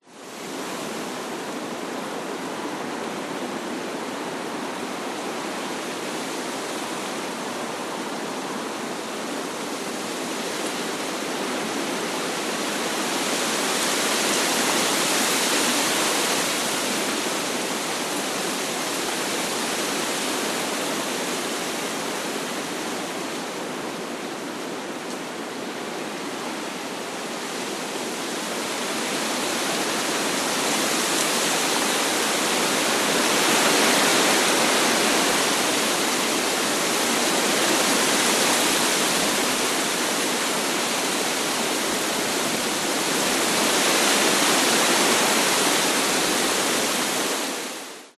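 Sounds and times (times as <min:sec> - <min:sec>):
strong wind in tall trees during a storm: 0:00.0 - 0:48.1.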